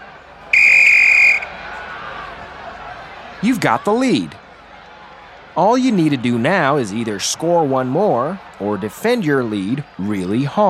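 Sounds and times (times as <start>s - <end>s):
low murmur of crowd noise: 0.0s - 10.6s
loud shrill referee's whistle blast: 0.5s - 1.6s
speech: 3.4s - 4.4s, 5.6s - 10.6s.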